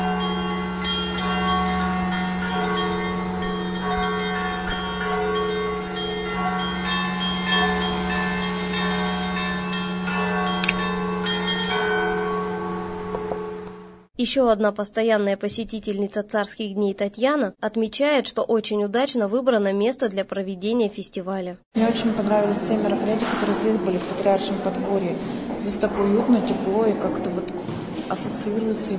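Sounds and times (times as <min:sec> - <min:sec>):
church bells ringing in a peal: 0:00.0 - 0:14.1, 0:21.8 - 0:28.9
speech: 0:14.2 - 0:28.9.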